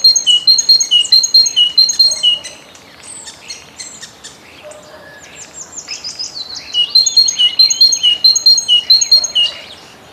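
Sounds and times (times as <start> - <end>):
great tit singing clear repeated high notes: 0.0 - 2.6, 6.5 - 9.9
jumble of other birdsong: 0.0 - 10.1.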